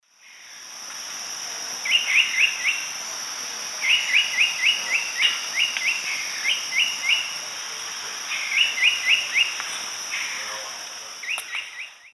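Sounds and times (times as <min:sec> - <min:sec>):
Tyranneutes stolzmanni calling in South American eastern lowlands: 0:01.8 - 0:03.0, 0:03.8 - 0:07.6, 0:08.2 - 0:12.1.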